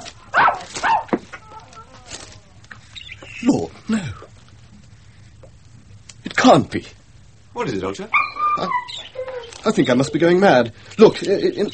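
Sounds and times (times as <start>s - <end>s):
dog barking: 0.3s - 1.2s
speech: 3.4s - 4.2s, 6.4s - 7.0s, 7.6s - 9.0s, 9.6s - 11.7s
dog whimpering and whining: 8.1s - 10.2s.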